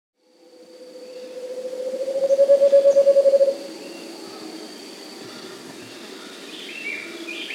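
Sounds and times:
Scaled Antpitta Grallaria guatimalensis calling in South America: 0.9s - 5.6s.

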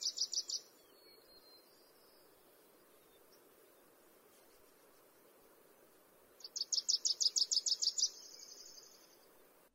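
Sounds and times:
Wilson's warbler singing: 0.0s - 4.0s, 5.8s - 9.4s
background noise: 0.0s - 9.7s.

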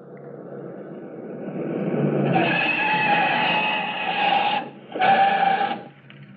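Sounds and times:
Pontiac sedan braking to a stop: 1.4s - 6.3s.

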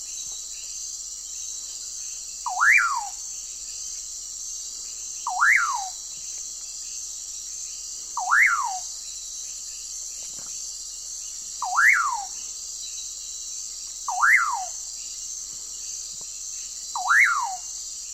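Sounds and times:
steady high insect drone: 0.0s - 18.1s
common pauraque giving a whistled call: 2.4s - 3.7s, 5.2s - 6.2s, 8.1s - 9.5s, 11.6s - 13.2s, 14.0s - 15.1s, 16.6s - 18.1s.

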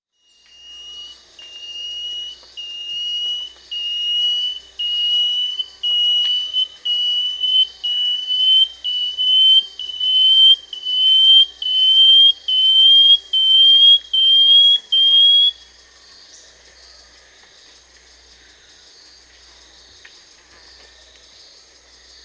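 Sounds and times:
Banded Antwren Dichrozona cincta calling in Peru: 0.7s - 15.6s.

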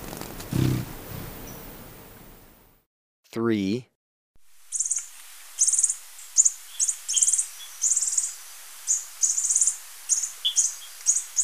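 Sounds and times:
speech: 3.3s - 3.9s
fainter thin violet-tailed sylph notes: 4.7s - 11.4s
violet-tailed sylph buzzy chattering calls in Ecuador: 4.7s - 11.4s.

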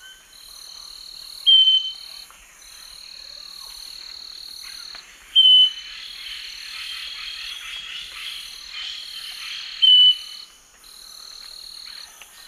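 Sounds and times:
Scaly-breasted Wren Microcerculus marginatus song: 1.4s - 2.2s, 5.3s - 6.2s, 9.6s - 10.5s.

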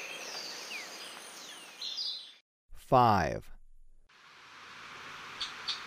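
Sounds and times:
black-winged saltator singing in Ecuador: 2.7s - 3.5s
speech: 2.9s - 3.5s.

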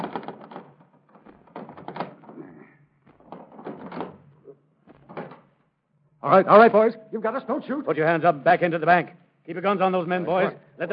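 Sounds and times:
heavy locked doors rattling: 0.0s - 5.6s
speech: 6.2s - 10.9s.

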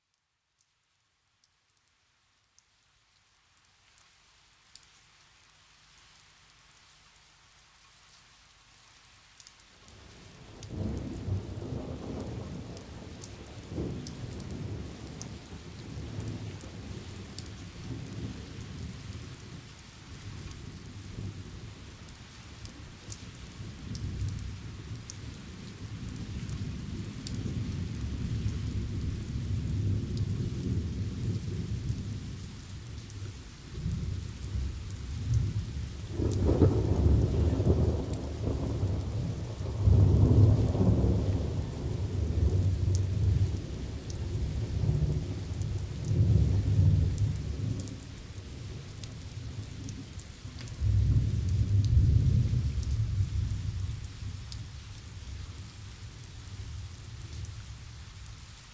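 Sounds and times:
thunderstorm out in the fields: 10.6s - 19.7s, 23.5s - 54.8s.

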